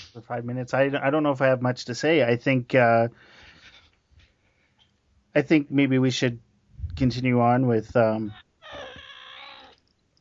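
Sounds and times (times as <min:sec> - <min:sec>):
speech: 0:00.2 - 0:03.4, 0:05.3 - 0:08.4
cat meowing: 0:08.3 - 0:09.9.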